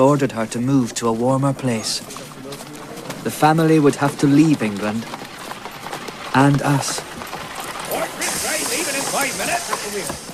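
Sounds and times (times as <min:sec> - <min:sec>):
speech: 0:00.0 - 0:02.3, 0:03.2 - 0:05.2, 0:06.3 - 0:07.1, 0:09.3 - 0:10.3
voices talking and murmuring at a railway station: 0:00.0 - 0:10.3
steam hissing at a railway station: 0:07.8 - 0:10.3.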